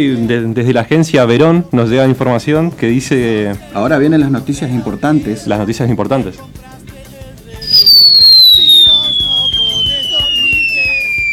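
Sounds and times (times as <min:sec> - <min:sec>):
speech: 0:00.0 - 0:06.6
falling-bomb whistle sound effect: 0:07.6 - 0:11.3.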